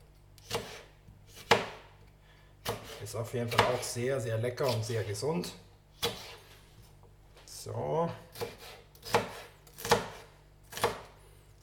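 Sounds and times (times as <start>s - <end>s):
knife dicing bell pepper: 0.4s - 2.0s, 2.6s - 4.0s, 4.6s - 6.5s, 8.2s - 11.6s
speech: 3.0s - 5.6s, 7.6s - 8.5s.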